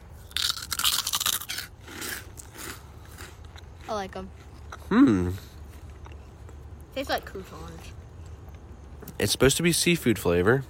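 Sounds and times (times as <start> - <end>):
crunching seafood-flavored snack chips: 0.2 - 4.8
speech: 3.9 - 5.5, 7.0 - 8.0, 9.1 - 10.6.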